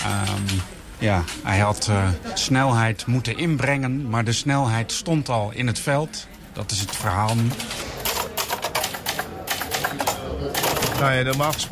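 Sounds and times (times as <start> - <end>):
speech: 1.0 - 7.8, 11.0 - 11.7
typewriter keys clacking: 6.7 - 11.7.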